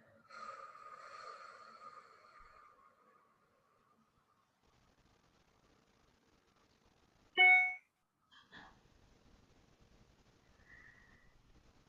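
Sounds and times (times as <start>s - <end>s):
long airy breath during guided breathing exercise: 0.2s - 3.3s.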